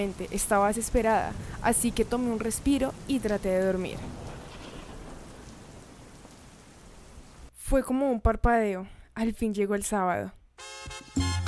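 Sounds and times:
speech: 0:00.0 - 0:04.2, 0:07.7 - 0:10.4
rain hitting a window: 0:00.0 - 0:07.5.

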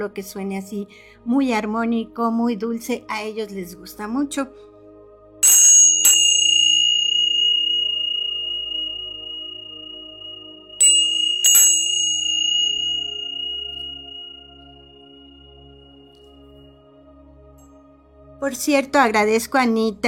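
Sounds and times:
speech: 0:00.0 - 0:04.7, 0:18.4 - 0:20.0
small hand cymbals struck and ringing: 0:05.4 - 0:15.6.

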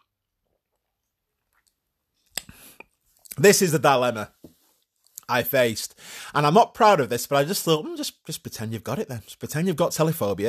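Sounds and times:
person sipping from a glass of porter beer: 0:00.4 - 0:03.4
faint mouth clicks: 0:02.3 - 0:03.4
speech: 0:03.4 - 0:04.4, 0:05.3 - 0:10.4.

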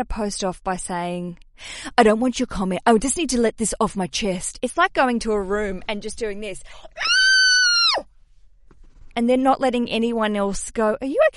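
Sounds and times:
speech: 0:00.0 - 0:07.1, 0:09.2 - 0:11.3
person screaming loudly in a high pitch: 0:07.0 - 0:08.0.

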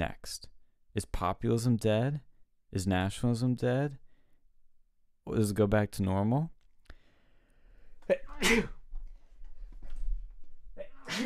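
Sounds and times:
speech: 0:00.0 - 0:04.0, 0:05.3 - 0:06.6, 0:08.1 - 0:08.8, 0:11.1 - 0:11.2
quiet breathing: 0:06.8 - 0:08.0
sneezes: 0:08.2 - 0:08.8, 0:10.8 - 0:11.2.

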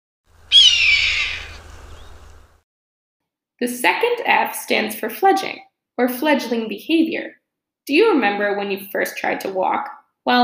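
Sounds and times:
red-tailed hawk raspy scream: 0:00.5 - 0:02.2
speech: 0:03.6 - 0:10.4.

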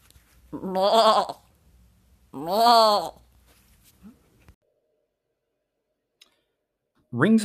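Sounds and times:
speech: 0:00.5 - 0:01.4, 0:02.3 - 0:03.2, 0:07.1 - 0:07.4
goat bleating: 0:00.5 - 0:01.5, 0:02.4 - 0:03.2.

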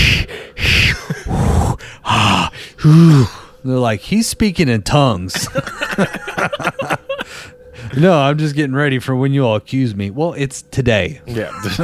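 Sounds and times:
straining grunts: 0:00.0 - 0:03.5
voice imitating loud breathing exercises: 0:00.0 - 0:03.6, 0:07.1 - 0:08.0
laughter: 0:00.7 - 0:01.6, 0:05.3 - 0:08.0, 0:11.3 - 0:11.8
speech: 0:02.8 - 0:07.0, 0:08.0 - 0:11.8.

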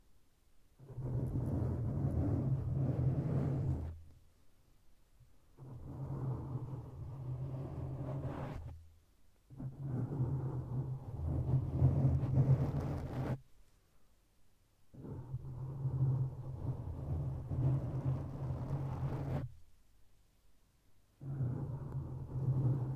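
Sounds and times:
scratching on a microphone: 0:00.8 - 0:04.1, 0:05.6 - 0:08.8, 0:09.5 - 0:13.4, 0:14.9 - 0:19.6, 0:21.2 - 0:22.9.

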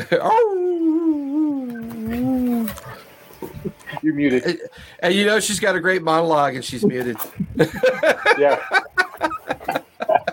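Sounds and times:
laughter: 0:00.0 - 0:00.6, 0:06.6 - 0:10.3
speech: 0:00.0 - 0:00.6, 0:04.0 - 0:08.9
dog whimpering and howling: 0:00.1 - 0:03.1.

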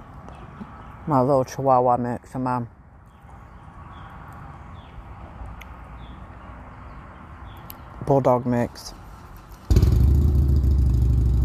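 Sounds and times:
speech: 0:01.1 - 0:02.8, 0:08.1 - 0:09.0
Harley-Davidson motorcycle engine cranked up: 0:09.6 - 0:11.4.

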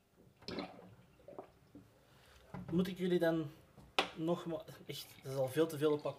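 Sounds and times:
water draining away: 0:00.4 - 0:01.8, 0:04.5 - 0:06.1
speech: 0:02.7 - 0:03.6, 0:04.2 - 0:06.1.

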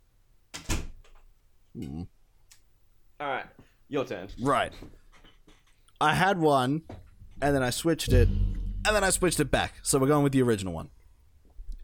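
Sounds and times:
speech: 0:01.8 - 0:02.2, 0:03.2 - 0:05.0, 0:06.0 - 0:11.0
door shutting with a single solid thud: 0:08.1 - 0:09.6.

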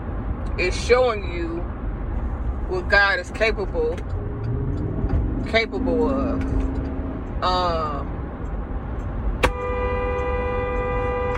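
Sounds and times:
road rumble: 0:00.0 - 0:11.3
speech: 0:00.6 - 0:01.8, 0:02.7 - 0:04.2, 0:05.5 - 0:06.7, 0:07.4 - 0:08.1
car horn honking at a truck pulling out: 0:09.4 - 0:11.3.

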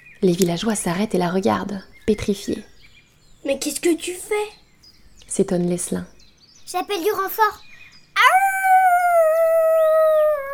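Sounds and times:
speech: 0:00.2 - 0:02.7, 0:03.4 - 0:04.6, 0:05.3 - 0:08.4
loud sustained howl: 0:08.2 - 0:10.5.

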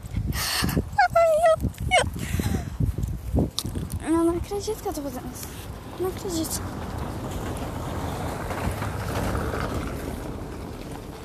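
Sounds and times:
street traffic rumbling: 0:00.0 - 0:11.2
wind buffeting: 0:00.0 - 0:11.2
speech: 0:04.5 - 0:06.8
passing cars roaring: 0:04.7 - 0:11.2.

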